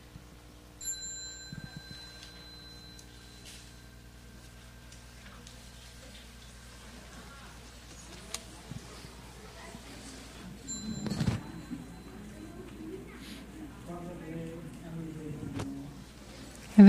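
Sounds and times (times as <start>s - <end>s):
faint room hum: 0.0s - 16.8s
small bell being struck: 0.8s - 5.5s, 10.6s - 13.2s.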